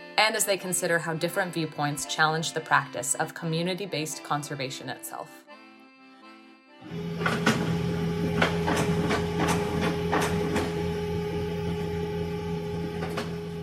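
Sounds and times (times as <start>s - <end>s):
speech: 0.2s - 5.4s, 6.8s - 7.5s
office printer motor whirring: 6.8s - 13.6s
office printer mechanical clicks and clacks: 7.1s - 11.1s.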